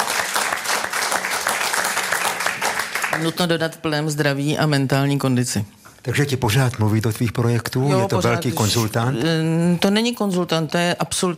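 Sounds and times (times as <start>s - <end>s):
applause from a group: 0.0s - 3.6s
speech: 3.1s - 11.3s.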